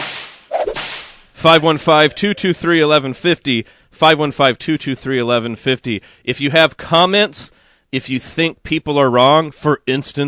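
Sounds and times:
whip crack with a hissing tail: 0.0s - 1.3s
speech: 1.4s - 10.2s
bright voice-like tonal notes: 1.5s - 2.8s.

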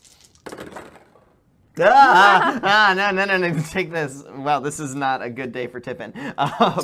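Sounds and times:
dice tumbling across a table for a stealth roll in a game: 0.0s - 1.4s
person's loud vocal outburst: 1.8s - 2.7s
laughter: 1.8s - 3.1s, 6.3s - 6.8s
speech: 1.8s - 6.8s.

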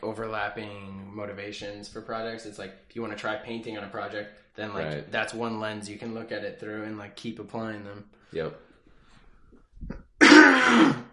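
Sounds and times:
speech: 0.1s - 8.7s
faint throat sounds: 9.8s - 11.1s
person clearing throat: 10.2s - 11.1s.

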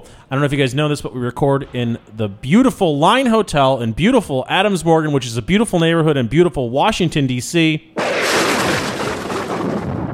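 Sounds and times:
speech: 0.3s - 8.2s
thin thunder sound effect rumble: 8.0s - 10.1s.

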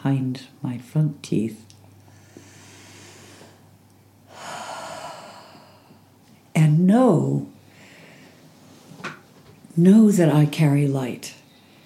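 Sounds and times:
speech: 0.0s - 1.7s, 6.9s - 7.5s, 9.8s - 11.4s
slow deep breathing during a meditation exercise: 2.0s - 6.1s, 7.6s - 8.5s.

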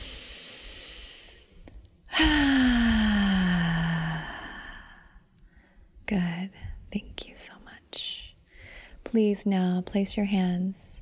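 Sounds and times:
slow out-breath during a guided breathing exercise: 0.0s - 5.9s
speech: 9.1s - 10.9s.

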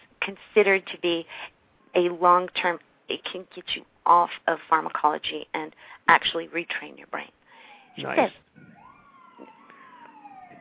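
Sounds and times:
speech: 0.2s - 7.4s, 8.0s - 8.8s
emergency vehicle sirens passing outside in Manhattan: 7.6s - 10.5s.

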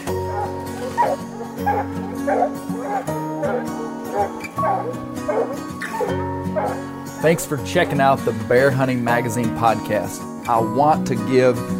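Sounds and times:
pack of free-ranging hunting dogs chasing bear barking and yipping: 0.0s - 8.0s
speech: 7.2s - 11.7s.

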